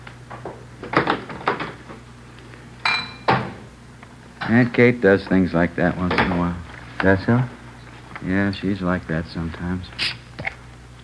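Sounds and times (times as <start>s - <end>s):
low steady hum: 0.0s - 11.0s
dishes clinking and clattering as they are handled in a messy kitchen: 2.8s - 3.5s
speech: 4.5s - 7.6s, 8.2s - 10.2s.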